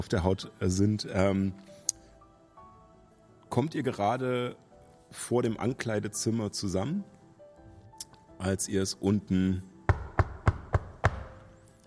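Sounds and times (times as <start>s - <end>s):
speech: 0.0s - 1.8s, 3.6s - 7.1s, 8.4s - 9.7s
firm knocking on a door: 9.9s - 11.4s.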